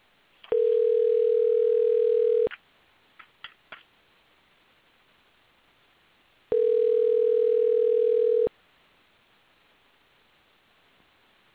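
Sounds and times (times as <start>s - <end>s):
telephone ringback tone over the line: 0.5s - 2.5s, 6.5s - 8.5s.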